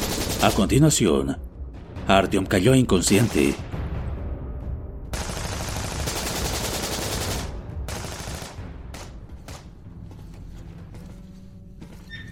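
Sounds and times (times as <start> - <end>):
rapid burst of dense overlapping gunfire: 0.0 - 0.8, 5.2 - 9.7
speech: 0.4 - 1.5, 2.1 - 3.7.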